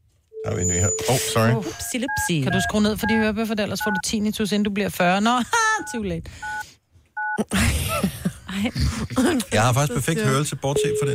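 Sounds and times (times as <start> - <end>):
telephone keypad dialing tone: 0.4 - 4.0, 6.4 - 6.6
speech: 0.5 - 6.7, 7.4 - 11.1.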